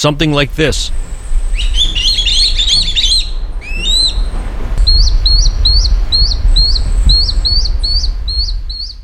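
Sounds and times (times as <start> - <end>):
speech: 0.0 - 1.9
low rumble: 0.0 - 9.0
swallow-tailed kite fledglings begging for food with shrill calls: 0.9 - 9.0.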